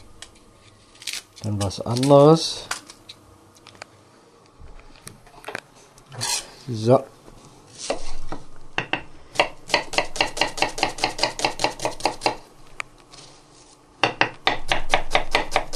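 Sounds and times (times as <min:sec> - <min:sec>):
speech: 0:01.4 - 0:02.7, 0:06.7 - 0:07.2
knife chopping onions finely: 0:08.8 - 0:12.4, 0:14.0 - 0:15.7.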